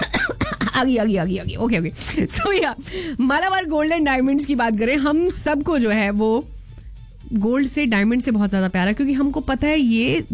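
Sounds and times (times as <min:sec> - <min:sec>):
person coughing: 0:00.0 - 0:00.9
speech: 0:00.8 - 0:06.6, 0:07.3 - 0:10.3.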